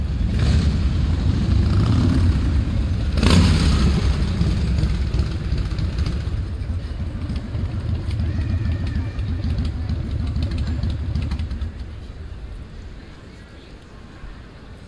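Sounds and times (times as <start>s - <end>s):
loud motorcycle: 0.0s - 12.0s
people on café terraces: 0.0s - 14.8s
children playing: 7.7s - 10.8s.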